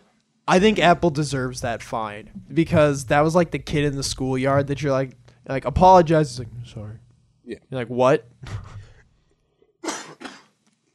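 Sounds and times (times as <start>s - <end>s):
speech: 0.5s - 8.8s
person coughing: 8.4s - 9.0s, 9.8s - 10.6s.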